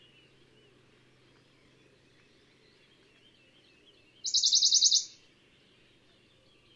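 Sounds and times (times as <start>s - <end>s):
Western Bonelli's warbler song: 4.2s - 5.2s.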